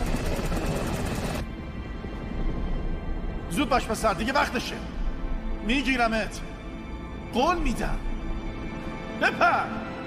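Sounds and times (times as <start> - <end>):
loud helicopter droning with rotor chopping: 0.0 - 3.5
speech: 3.5 - 5.0, 5.6 - 6.5, 7.3 - 8.1, 9.2 - 9.9.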